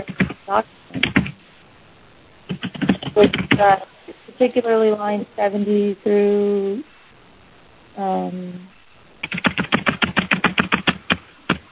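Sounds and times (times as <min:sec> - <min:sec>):
speech: 0:00.0 - 0:01.0, 0:03.2 - 0:06.9, 0:08.0 - 0:09.5
loud typing on a noisy computer keyboard: 0:00.0 - 0:01.4, 0:02.5 - 0:03.7, 0:09.2 - 0:11.7.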